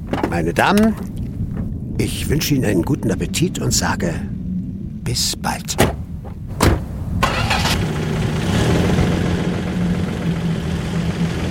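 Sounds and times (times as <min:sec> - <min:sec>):
speech: 0:00.3 - 0:01.1, 0:02.0 - 0:04.3, 0:05.1 - 0:06.0
car engine starting: 0:05.8 - 0:11.4.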